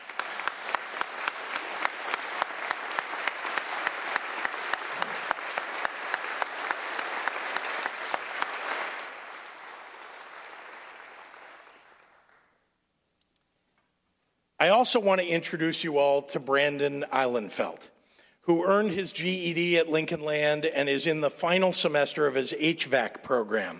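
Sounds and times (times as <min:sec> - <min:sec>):
large audience applauding: 0:00.0 - 0:12.5
speech: 0:14.6 - 0:23.7.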